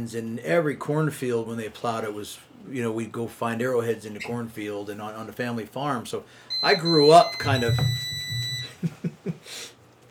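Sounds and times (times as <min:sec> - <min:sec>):
speech: 0:00.0 - 0:08.1
driveway alarm buzzing beeps: 0:06.5 - 0:08.8.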